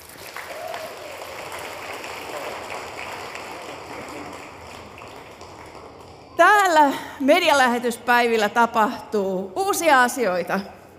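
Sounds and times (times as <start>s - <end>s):
audience applause for a house band at a media event: 0.0s - 7.2s
speech: 6.4s - 10.8s.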